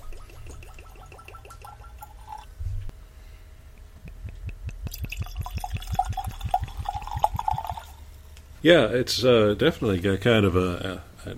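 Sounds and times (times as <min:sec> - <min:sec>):
beer poured from bottle into glass: 0:00.0 - 0:02.5, 0:04.9 - 0:08.0
speech: 0:08.6 - 0:11.3.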